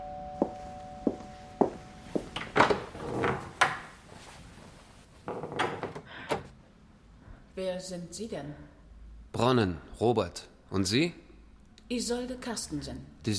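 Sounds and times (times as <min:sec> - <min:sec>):
shuffling: 0:00.1 - 0:05.3
footsteps: 0:00.4 - 0:05.4
speech: 0:07.6 - 0:08.7, 0:09.4 - 0:11.2, 0:11.9 - 0:13.3.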